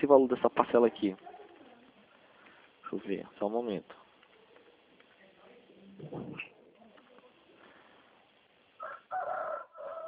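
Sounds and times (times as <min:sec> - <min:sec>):
quiet murmur: 0:00.0 - 0:08.8
speech: 0:00.1 - 0:01.4, 0:02.9 - 0:04.0, 0:06.0 - 0:06.5
rooster crowing: 0:08.8 - 0:10.0.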